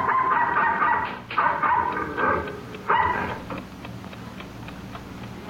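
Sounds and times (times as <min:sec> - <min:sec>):
dog barking at night on a ranch in Carson County Texas: 0:00.0 - 0:03.4.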